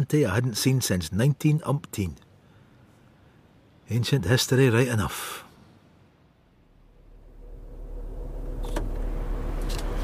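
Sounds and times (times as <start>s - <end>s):
speech: 0.0s - 2.2s, 3.9s - 5.5s
car engine rumble as car pulls away: 5.7s - 10.0s.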